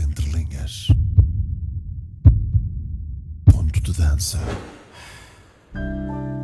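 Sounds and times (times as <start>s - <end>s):
deep booming heartbeat sound effect: 0.0s - 4.0s
speech: 4.0s - 4.8s.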